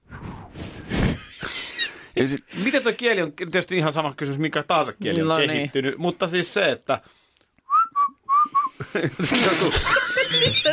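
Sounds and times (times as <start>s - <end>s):
people laughing: 1.0s - 3.0s, 8.7s - 10.7s
speech: 2.2s - 7.2s, 8.4s - 10.7s
person whistling speech-like notes mimicking a whistled language: 7.6s - 8.8s.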